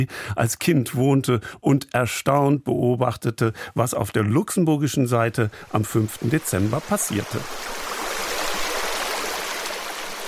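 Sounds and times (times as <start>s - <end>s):
speech: 0.0s - 7.9s
river water babbling gently: 5.5s - 10.2s.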